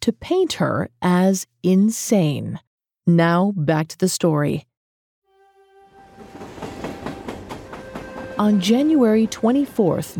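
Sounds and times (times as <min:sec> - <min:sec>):
speech: 0:00.0 - 0:04.7, 0:08.4 - 0:10.1
train horn: 0:05.3 - 0:09.8
train leaving Enterprise Kansas in 1901 rolling along the rails: 0:06.1 - 0:10.1.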